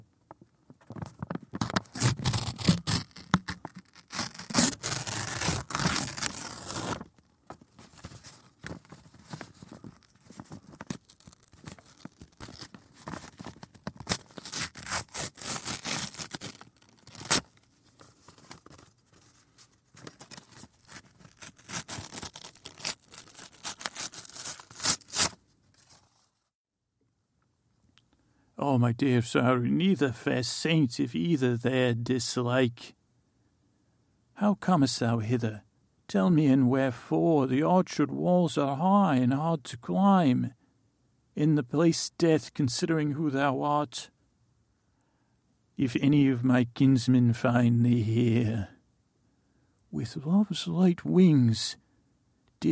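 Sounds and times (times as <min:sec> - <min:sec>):
paper being ripped in two: 0:01.6 - 0:26.2
speech: 0:28.7 - 0:33.0, 0:34.4 - 0:40.6, 0:41.4 - 0:44.1, 0:45.8 - 0:48.7, 0:49.9 - 0:51.8.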